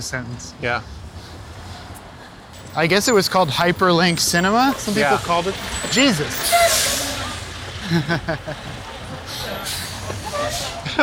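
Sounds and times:
speech: 0.0 - 1.0, 2.8 - 7.0, 7.9 - 11.0
18-wheeler truck engine rumbling past: 0.0 - 11.0
truck air brakes hissing: 4.8 - 7.5, 9.2 - 10.9
laughter: 7.2 - 11.0.

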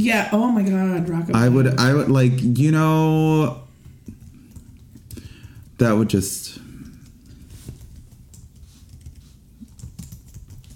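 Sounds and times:
speech: 0.0 - 3.6, 5.8 - 6.6
typing on a computer keyboard: 3.8 - 6.0, 6.8 - 10.7.

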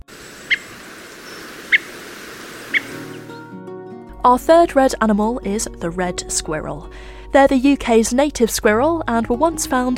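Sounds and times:
steady low hiss: 0.0 - 3.4
redwing thrush calls: 0.1 - 3.4
speech: 4.2 - 9.9.

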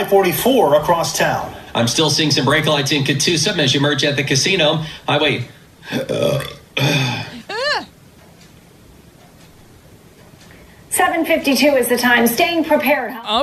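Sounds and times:
speech: 0.0 - 7.3, 11.1 - 13.4
loud drawn-out burp from a TV traffic reporter: 5.9 - 7.5.

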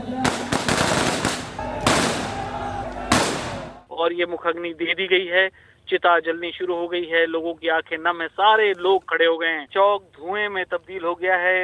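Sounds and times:
ceremonial rifle volley fired as funeral gun salute at an outdoor cremation: 0.2 - 3.8
speech: 4.0 - 11.6.

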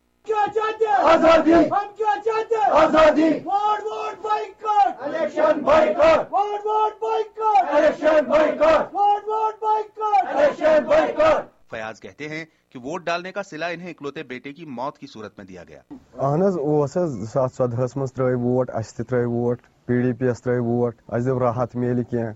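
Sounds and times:
crowd chanting slogans outside polling stations on election day: 0.4 - 6.4, 7.1 - 9.0, 10.1 - 11.5
speech: 1.1 - 22.3.

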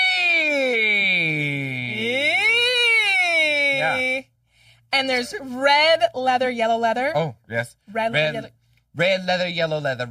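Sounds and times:
single voice siren-like vocal warm-up exercise: 0.5 - 4.2
speech: 4.9 - 10.0.

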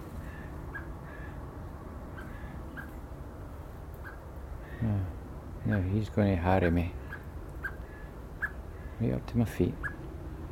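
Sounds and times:
steady low outdoor rumble: 0.0 - 10.4
blackbird calling in a garden: 0.1 - 1.4, 2.1 - 3.1, 3.9 - 4.9, 5.6 - 6.0, 6.6 - 9.0, 9.6 - 10.0
speech: 4.8 - 7.0, 9.0 - 10.0.

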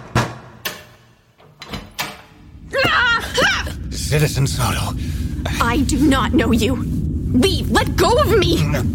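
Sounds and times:
door latch and handle clicking open: 0.3 - 2.3
speech: 4.1 - 8.9.

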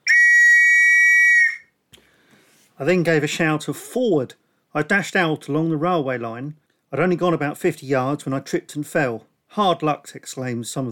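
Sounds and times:
long shrill whistle blast as a signal for a battalion to advance: 0.0 - 1.8
speech: 2.8 - 10.9.

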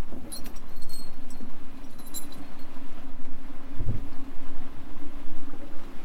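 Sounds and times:
rumbling water: 0.0 - 6.0
dinghy knocking against sailboat hull: 3.8 - 4.1.

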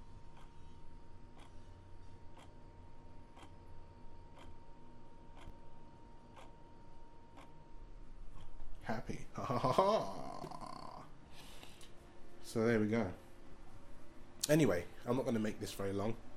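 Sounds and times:
constant low hum: 0.0 - 16.3
wall clock ticking: 0.3 - 0.7, 1.3 - 1.6, 2.3 - 2.6, 3.3 - 3.6, 4.3 - 4.6, 5.3 - 5.6, 6.2 - 6.6, 7.3 - 7.6
speech: 8.9 - 10.6, 12.5 - 13.2, 14.4 - 16.3.

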